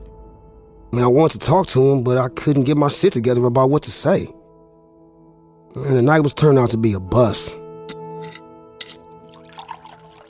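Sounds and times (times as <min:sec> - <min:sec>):
speech: 0:00.9 - 0:04.4, 0:05.8 - 0:07.6
cognac pouring into a glass: 0:08.2 - 0:10.2.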